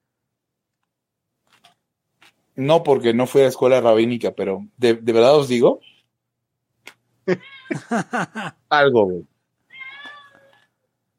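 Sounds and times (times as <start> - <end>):
speech: 2.6 - 5.9, 7.3 - 9.3
cat meowing loudly: 7.3 - 7.8, 9.7 - 10.7
laughter: 7.3 - 8.6.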